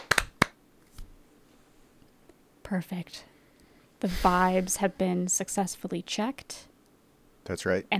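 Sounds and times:
sharp hand claps: 0.0 - 0.6
speech: 2.7 - 3.3, 4.0 - 6.7, 7.5 - 7.9.

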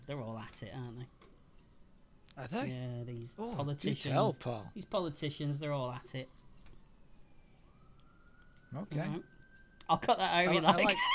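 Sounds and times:
emergency siren wailing outside: 0.0 - 2.2, 4.1 - 11.1
speech: 0.1 - 1.3, 2.4 - 6.4, 8.7 - 9.3, 9.9 - 11.1
laughter: 10.5 - 11.1.

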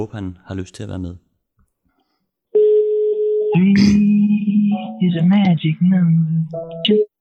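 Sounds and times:
speech: 0.0 - 1.2, 3.5 - 7.1
phone line ringing tone while calling: 2.5 - 5.2.

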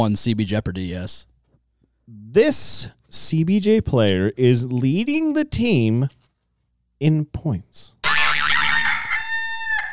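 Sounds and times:
speech: 0.0 - 1.3, 2.1 - 6.2, 7.0 - 8.0
rooster crowing: 8.0 - 9.9.

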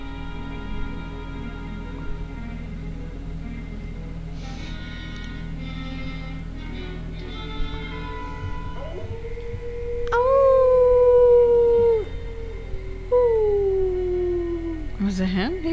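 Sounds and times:
low rumbling background: 0.0 - 15.7
werewolf howling in a film: 8.6 - 15.6.

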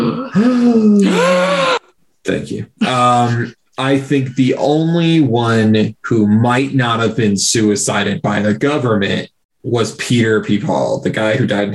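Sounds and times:
people letting out startled voiced gasps: 0.2 - 1.9
speech: 0.3 - 1.4, 2.3 - 11.7.

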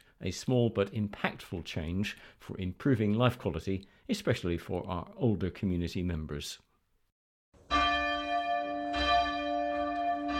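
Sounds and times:
speech: 0.2 - 6.7
church bell ringing: 7.6 - 10.3.

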